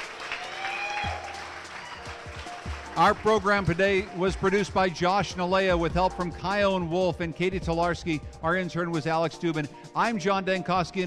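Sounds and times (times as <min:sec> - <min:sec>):
audience applauding at a brewery in Bristol Connecticut: 0:00.0 - 0:04.4
speech: 0:03.0 - 0:11.0.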